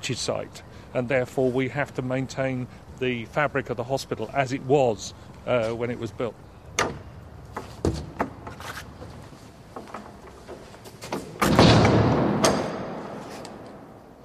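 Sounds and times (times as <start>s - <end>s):
speech: 0.0s - 7.0s
heavy door slamming shut in a reverberant space: 11.3s - 13.2s.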